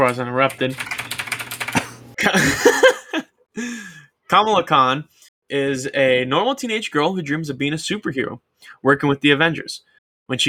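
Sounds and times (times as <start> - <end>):
speech: 0.0 - 0.9, 2.2 - 2.9, 3.6 - 10.4
typing on a mechanical keyboard: 0.0 - 2.1
laughter: 1.8 - 3.2.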